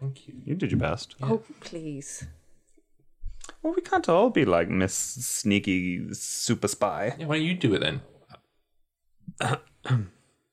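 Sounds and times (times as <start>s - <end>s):
speech: 0.1s - 2.4s, 3.6s - 8.1s, 9.4s - 10.2s
person clearing throat: 9.3s - 10.3s.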